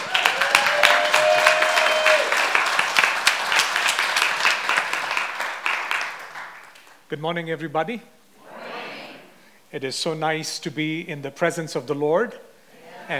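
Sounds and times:
audience applauding to welcome a guest speaker: 0.0 - 7.0
speech: 7.1 - 8.2, 9.7 - 12.5.

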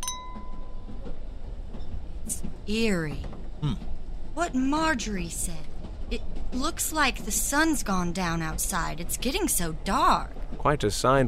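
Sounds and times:
glasses clinking in a toast: 0.0 - 0.5
steady low rumble of noise: 0.1 - 11.2
speech: 2.3 - 11.2.

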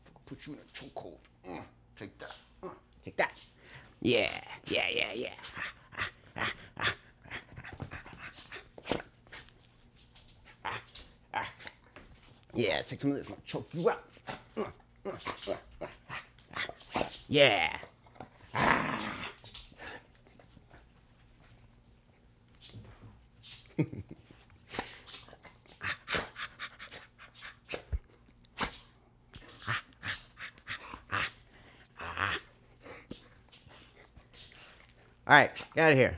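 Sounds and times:
speech: 0.3 - 7.0, 12.6 - 15.6, 17.3 - 17.8, 35.3 - 36.1
large dogs panting: 2.2 - 18.5, 19.2 - 36.1
large dogs growling and snorting while play-wrestling: 4.1 - 9.5, 10.5 - 11.9, 14.2 - 20.1, 24.7 - 28.8, 29.4 - 33.2.

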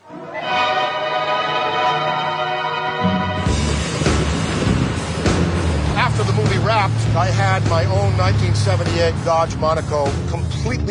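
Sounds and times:
air raid siren wailing: 0.0 - 6.0
heavy rumbling roaring noise: 3.1 - 9.9
speech: 6.8 - 10.9.

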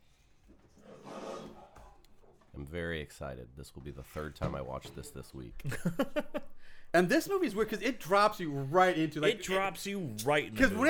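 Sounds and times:
lion roar from a film studio logo: 0.8 - 1.8
speech: 2.6 - 10.8
laughter: 5.6 - 6.6.

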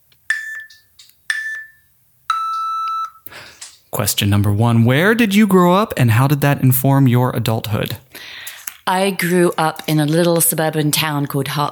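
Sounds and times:
electronic countdown beeps before a video recording: 0.3 - 3.2
speech: 3.9 - 8.0, 8.8 - 11.7.

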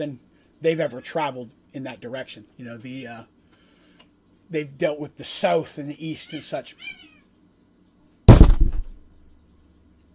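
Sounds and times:
speech: 0.0 - 3.4, 4.5 - 7.1
object knocked over by cats: 8.3 - 9.0.

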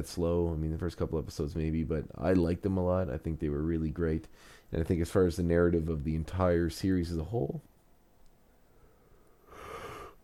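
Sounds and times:
speech: 0.0 - 7.7
person yawning: 9.5 - 10.2.

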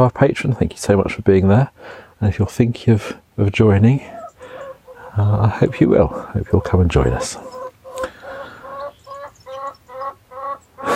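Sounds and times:
speech: 0.0 - 4.2, 5.2 - 7.6
chickens clucking and squawking insistently: 3.5 - 10.9.

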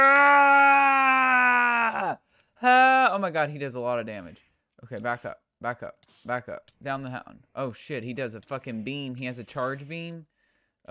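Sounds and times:
person screaming: 0.0 - 3.1
speech: 3.2 - 10.8.

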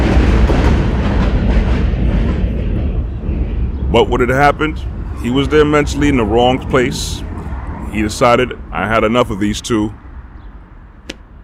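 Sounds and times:
train rumbling past with rhythmic clattering: 0.0 - 11.4
speech: 4.0 - 7.3, 7.9 - 10.0.

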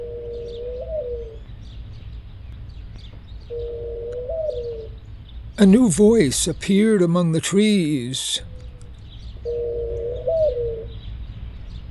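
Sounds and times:
dove cooing: 0.0 - 1.4, 3.5 - 5.0, 9.4 - 11.1
speech: 5.6 - 8.5.

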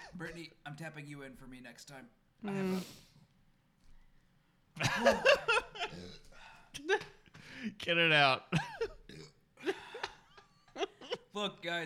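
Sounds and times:
speech: 0.1 - 3.1, 5.0 - 6.2, 6.8 - 9.8, 11.4 - 11.8
gulping burps: 5.8 - 7.1, 8.5 - 9.6.

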